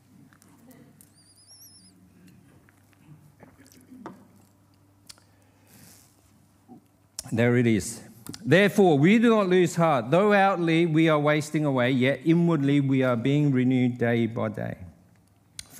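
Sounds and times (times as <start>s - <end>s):
steady low hum: 0.0s - 15.7s
person sipping a drink: 2.2s - 6.9s
speech: 7.3s - 14.8s.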